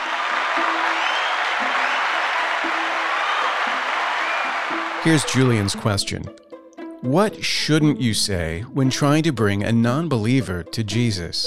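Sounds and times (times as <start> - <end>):
crowd applauding: 0.0 - 6.1
speech: 5.0 - 6.4, 7.0 - 11.4.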